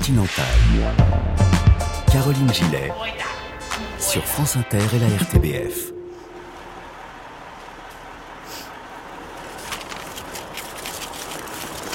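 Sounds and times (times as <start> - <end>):
speech: 0.1 - 3.4, 4.0 - 5.9
traffic-like rumble and hiss in an open-air bus station parking lot at night: 6.3 - 11.9
faint clicks and rustles: 9.3 - 11.9.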